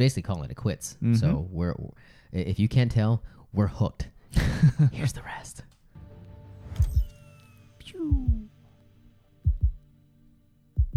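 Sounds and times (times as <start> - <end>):
speech: 0.0 - 5.7
deep booming heartbeat-style thumps in movie trailer: 7.8 - 8.6, 9.4 - 9.9, 10.8 - 10.9.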